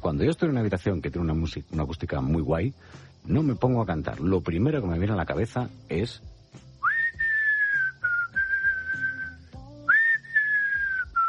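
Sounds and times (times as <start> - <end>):
soft low musical backing: 0.0 - 11.2
speech: 0.1 - 6.7
person whistling a tune: 6.8 - 11.2.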